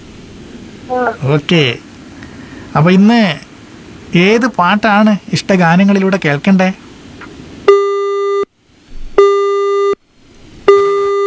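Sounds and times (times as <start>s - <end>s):
speech: 0.9s - 1.8s, 2.8s - 3.4s, 4.1s - 6.8s
telephone busy tone after a caller drops off a phone-in line: 7.7s - 8.5s, 9.2s - 10.0s, 10.7s - 11.2s.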